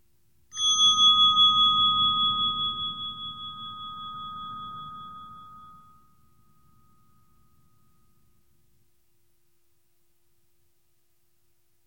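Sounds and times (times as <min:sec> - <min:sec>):
meditation bell ringing: 0:00.5 - 0:08.7.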